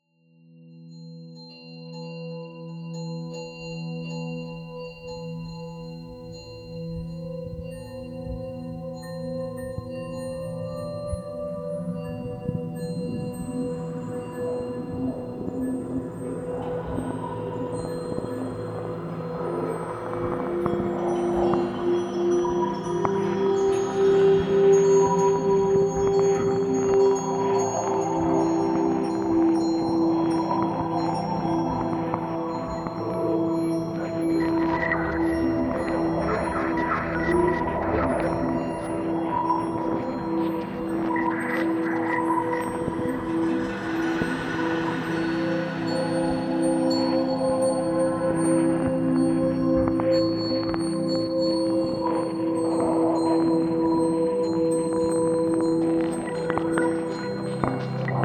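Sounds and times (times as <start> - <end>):
ambient space sound: 3.9 - 58.2.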